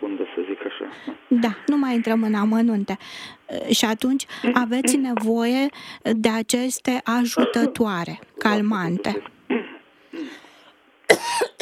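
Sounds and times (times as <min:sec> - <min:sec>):
speech: 0:00.9 - 0:09.3
person coughing in heavily polluted air: 0:07.4 - 0:07.8, 0:11.1 - 0:11.6.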